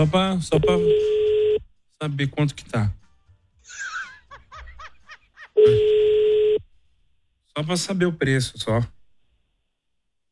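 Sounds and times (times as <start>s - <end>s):
speech: 0.0s - 1.2s, 2.0s - 3.0s, 7.6s - 9.0s
steady electronic telephone tone: 0.6s - 1.6s, 5.6s - 6.7s
person chuckling breathily: 3.6s - 6.0s.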